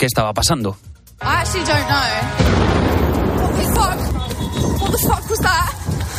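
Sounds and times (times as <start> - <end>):
speech: 0.0 - 2.9, 3.6 - 6.1
loud manhole explosion blast: 2.0 - 5.1
panicked crowd screaming and shouting as they scatter: 3.3 - 6.1.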